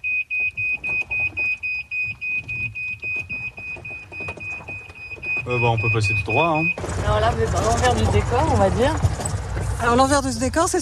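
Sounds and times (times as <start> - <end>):
car electronic warning beep: 0.0 - 7.3
low rumbling background: 2.2 - 10.8
speech: 5.5 - 10.8.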